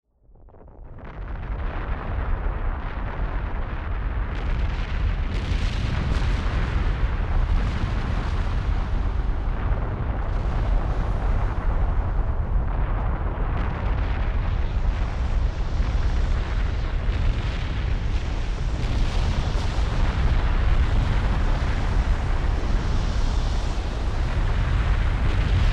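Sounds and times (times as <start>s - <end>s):
volcano rumble: 0.2s - 25.7s.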